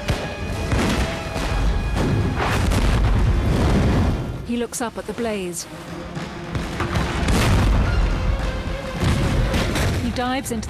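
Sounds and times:
cannon fire from a ship's guns at sea: 0.0s - 4.5s, 6.5s - 8.2s, 9.0s - 10.2s
speech: 4.6s - 5.9s, 10.2s - 10.6s.

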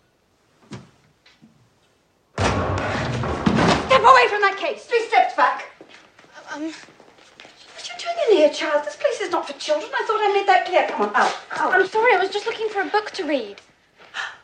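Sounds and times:
library door flying open with a bang: 2.4s - 4.1s
speech: 4.0s - 5.7s, 6.6s - 6.9s, 8.3s - 13.6s.

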